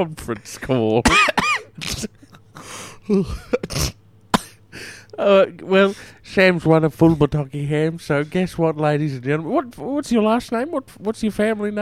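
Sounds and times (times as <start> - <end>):
speech: 0.0 - 3.9, 4.8 - 11.7
person sneezing: 1.1 - 4.6
short voiced gasps and breaths: 1.8 - 5.2.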